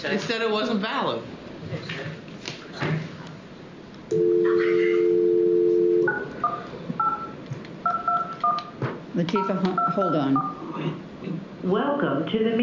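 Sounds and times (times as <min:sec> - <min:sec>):
speech: 0:00.0 - 0:02.2, 0:09.2 - 0:11.0, 0:11.6 - 0:12.6
telephone dial tone: 0:04.1 - 0:06.2
telephone keypad beeps: 0:04.1 - 0:08.7, 0:09.4 - 0:10.6.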